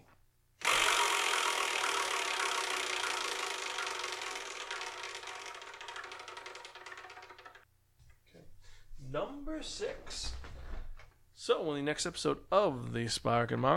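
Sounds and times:
prize wheel clicking as it is spun: 0.6s - 7.7s
speech: 9.1s - 10.4s, 11.4s - 13.7s.

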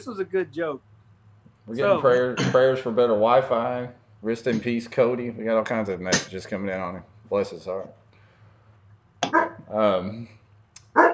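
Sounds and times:
speech: 0.0s - 0.9s, 1.6s - 8.0s, 9.7s - 10.4s
low hum: 0.0s - 11.1s
dog barking in short sharp bursts: 9.3s - 9.7s, 10.9s - 11.1s.

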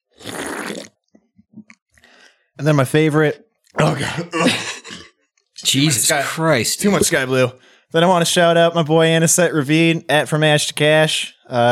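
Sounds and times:
slurping sip of a drink: 0.1s - 1.0s
soft gulps and mouth clicks while swallowing: 0.1s - 2.3s
speech: 2.6s - 4.8s, 5.7s - 11.7s.

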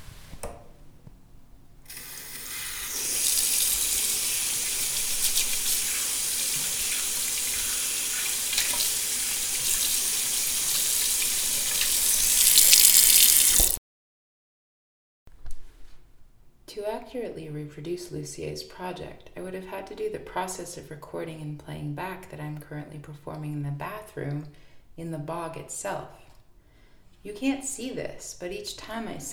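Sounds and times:
water gushing from a bathroom tap into a sink: 1.9s - 13.8s
speech: 16.8s - 26.2s, 27.2s - 29.3s.

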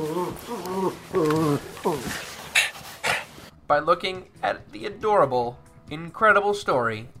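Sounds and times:
dog whimpering: 0.0s - 3.4s
speech: 0.2s - 2.2s, 3.7s - 7.1s.

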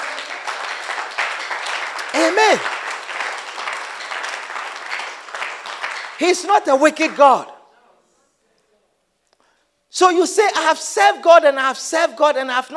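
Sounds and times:
church audience clapping: 0.0s - 7.4s
person calling out: 2.1s - 2.6s
speech: 2.2s - 2.8s, 6.2s - 7.5s, 10.0s - 12.7s.

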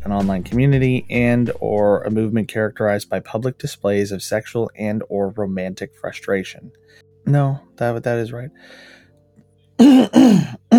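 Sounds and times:
speech: 0.0s - 9.0s, 9.8s - 10.7s
person clearing throat: 9.8s - 10.7s.

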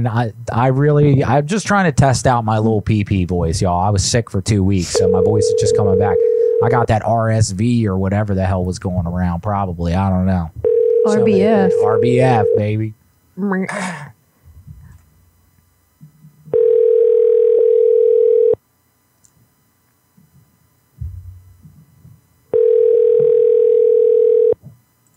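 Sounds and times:
speech: 0.0s - 14.2s
ringback tones from an outgoing phone call: 5.0s - 6.9s, 10.6s - 12.8s, 16.5s - 18.6s, 22.5s - 24.6s.

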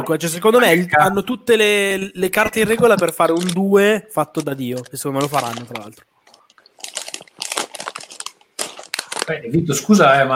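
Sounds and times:
speech: 0.0s - 6.1s, 9.3s - 10.3s
someone peeling and eating a mandarin: 2.4s - 3.7s, 4.3s - 9.3s.

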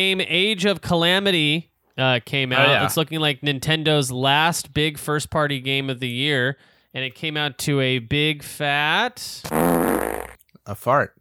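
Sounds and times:
speech: 0.0s - 11.1s
loud drawn-out buzzy fart sound: 9.4s - 10.4s.

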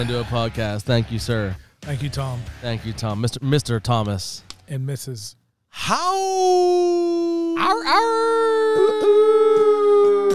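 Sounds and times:
speech: 0.0s - 9.3s
person imitating a wolf howl: 5.8s - 10.3s.

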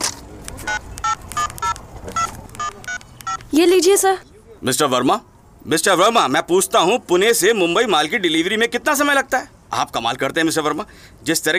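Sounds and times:
touch-tone beeps of a telephone number being dialed: 0.7s - 3.6s
speech: 3.6s - 11.5s.

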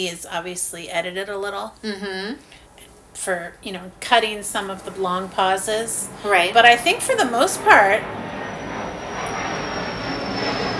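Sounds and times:
speech: 0.0s - 8.2s
airplane flying low overhead with engines roaring: 3.9s - 10.7s.

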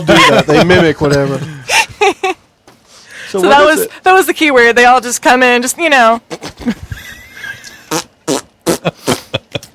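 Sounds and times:
speech: 0.0s - 1.5s, 3.3s - 6.9s
laughter: 0.0s - 2.4s
loud sputtering fart noises: 6.3s - 6.7s, 7.8s - 9.3s.

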